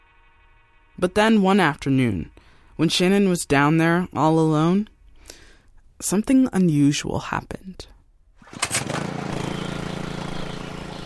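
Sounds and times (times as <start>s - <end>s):
speech: 1.0s - 4.9s, 6.0s - 7.9s
small engine-driven water pump droning putter: 8.4s - 11.0s.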